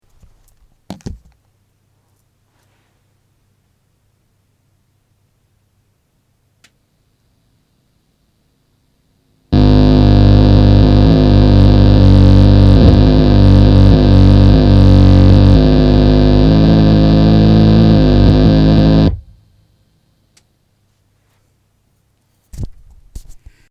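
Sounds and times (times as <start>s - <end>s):
Diezel Herbert buzzing noise: 9.6s - 19.6s.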